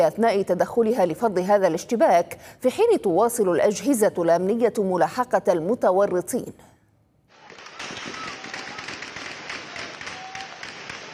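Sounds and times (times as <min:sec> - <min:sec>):
speech: 0:00.0 - 0:06.7
dense sustained bursts of rapid gunfire: 0:07.3 - 0:11.1.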